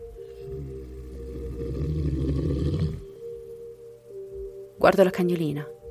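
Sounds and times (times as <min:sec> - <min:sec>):
low rumbling animal growl: 0:00.0 - 0:03.2
speech: 0:04.8 - 0:05.8.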